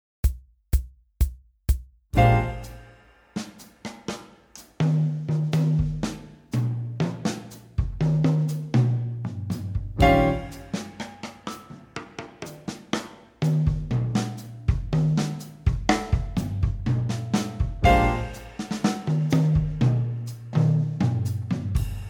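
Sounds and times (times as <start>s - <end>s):
bossa nova drums: 2.2s - 22.0s.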